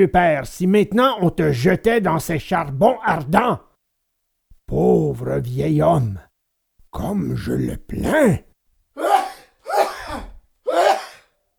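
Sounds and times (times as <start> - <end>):
speech: 0.0 - 3.7, 4.7 - 6.3, 6.9 - 9.1
man sneezing: 9.0 - 11.4.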